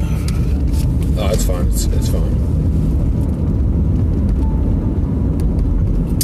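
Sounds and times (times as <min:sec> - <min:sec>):
large vehicle engine rumbling: 0:00.0 - 0:06.2
speech: 0:01.4 - 0:02.8.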